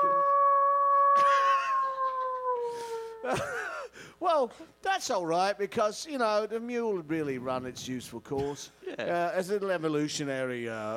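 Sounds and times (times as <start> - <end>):
person imitating a wolf with a long sustained howl: 0.0 - 3.4
speech: 4.2 - 10.9.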